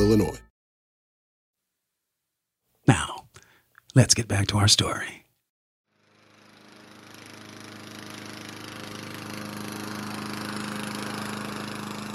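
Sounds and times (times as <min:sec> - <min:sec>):
speech: 0:00.0 - 0:00.4, 0:02.9 - 0:03.2, 0:04.0 - 0:05.2
lawn mower engine droning: 0:06.0 - 0:12.1.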